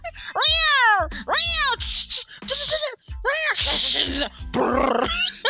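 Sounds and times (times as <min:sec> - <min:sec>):
cats around a house yowling and screeching: 0:00.4 - 0:01.9, 0:03.5 - 0:05.3.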